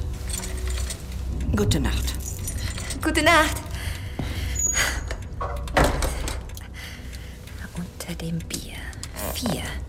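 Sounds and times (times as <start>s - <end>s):
faint jingling rattles: 0.2s - 3.7s
speech: 1.5s - 2.2s, 3.1s - 3.7s, 8.2s - 8.7s, 9.3s - 9.8s
key inserted into door lock: 5.1s - 6.5s.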